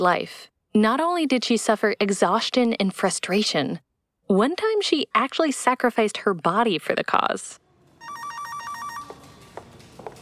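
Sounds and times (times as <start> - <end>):
speech: 0.0 - 7.6
telephone ringing with a warbling electronic trill: 8.0 - 9.5.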